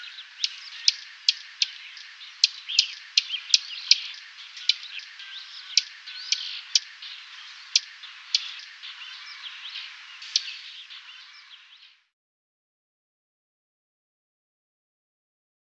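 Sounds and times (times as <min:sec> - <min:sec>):
dusky warbler hard dry clicking tack notes: 0:00.0 - 0:11.9
soft twittering from other birds: 0:00.0 - 0:12.1.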